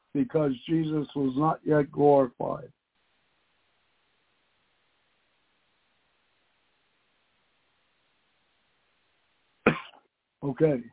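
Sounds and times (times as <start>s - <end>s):
speech: 0.1s - 2.8s, 10.4s - 10.9s
person coughing: 9.7s - 10.0s.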